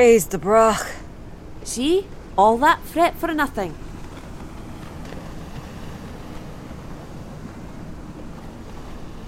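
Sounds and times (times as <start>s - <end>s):
speech: 0.0s - 1.0s, 1.6s - 3.9s
boat approaching over open water: 0.0s - 9.2s
waves lapping: 0.0s - 9.2s
wind: 0.0s - 9.2s.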